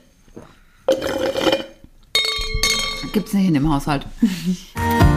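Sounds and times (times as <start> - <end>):
glass clinking while getting water: 0.9 - 3.3
speech: 3.1 - 5.0.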